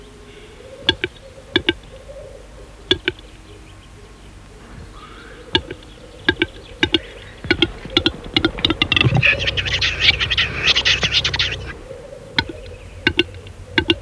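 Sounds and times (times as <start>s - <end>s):
Western capercaillie song of hard double clicks: 0.8s - 2.0s, 2.9s - 3.3s, 4.9s - 14.0s.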